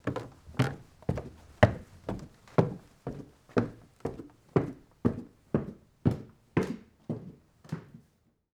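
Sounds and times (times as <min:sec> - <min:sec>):
footsteps on wooden stairs: 0:00.0 - 0:07.2.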